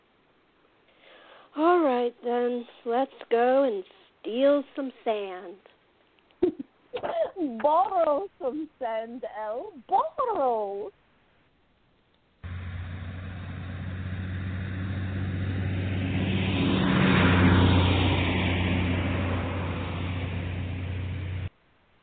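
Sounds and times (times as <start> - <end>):
speech: 1.6 - 5.7, 6.4 - 11.0
car engine droning while driving: 12.4 - 21.5
road rumble: 12.4 - 21.5.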